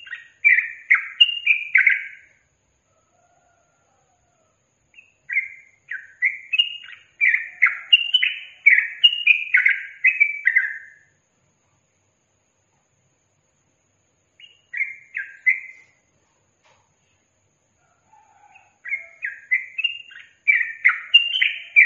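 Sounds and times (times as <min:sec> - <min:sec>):
yellow-vented bulbul slurred and chattering song: 0:00.0 - 0:02.4, 0:04.9 - 0:11.2, 0:14.2 - 0:16.8, 0:18.1 - 0:21.8.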